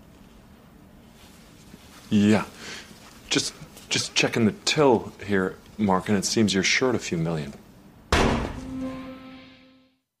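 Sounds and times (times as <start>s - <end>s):
speech: 2.1s - 7.6s
single loud gunshot with ringing echo: 8.1s - 8.7s.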